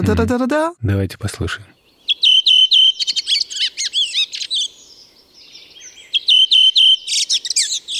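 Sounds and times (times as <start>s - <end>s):
speech: 0.0s - 1.8s
redwing singing with neigh-like trill: 1.7s - 7.9s.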